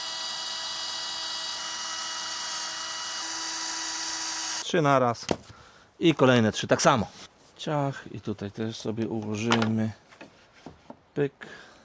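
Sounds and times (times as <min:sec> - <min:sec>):
power drill with metal bits boring into material: 0:00.0 - 0:04.6
speech: 0:04.7 - 0:10.0, 0:11.2 - 0:11.7.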